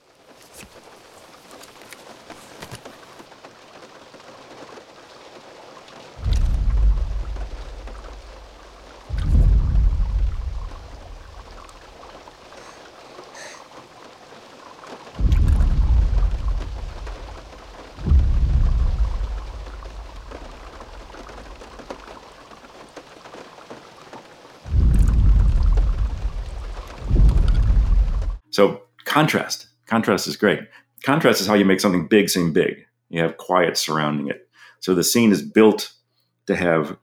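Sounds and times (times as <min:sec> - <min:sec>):
steady hiss of falling rain: 0:00.0 - 0:28.4
deep distant booming dinosaur footsteps: 0:06.2 - 0:12.7, 0:15.1 - 0:23.1, 0:24.7 - 0:28.4
speech: 0:28.6 - 0:37.0.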